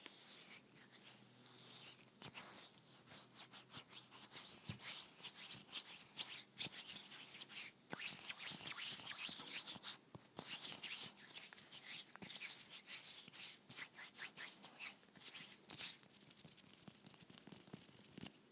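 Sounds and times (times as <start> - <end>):
hands rubbing and scratching: 0.0 - 18.4.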